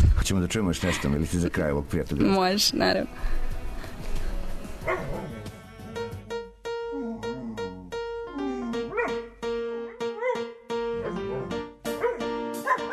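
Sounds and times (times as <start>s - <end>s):
speech: 0.3s - 3.6s
steady musical tones: 5.6s - 12.9s
person imitating a dog barking and yipping: 7.0s - 9.2s.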